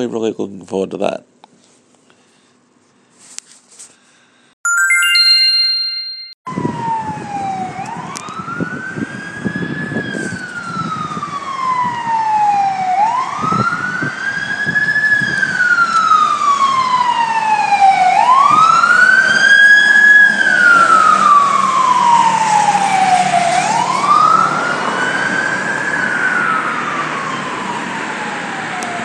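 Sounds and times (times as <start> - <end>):
speech: 0.0 - 1.4
fire engine siren wailing: 6.5 - 29.0.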